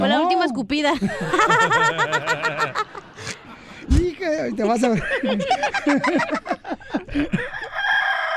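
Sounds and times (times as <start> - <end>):
speech: 0.6 - 3.4, 4.5 - 7.6
laughter: 1.0 - 7.9
rooster crowing: 7.5 - 8.3.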